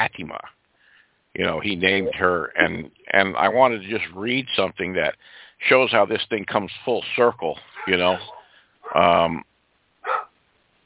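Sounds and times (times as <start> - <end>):
speech: 0.0 - 0.6, 1.3 - 10.2
dog barking: 7.8 - 9.1, 10.0 - 10.4.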